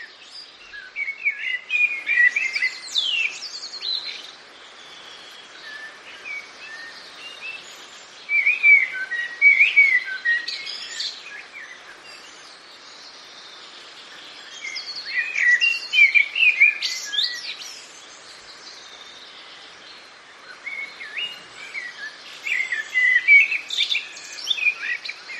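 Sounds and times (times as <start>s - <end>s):
common blackbird singing fluting whistled phrases: 0.0s - 25.3s.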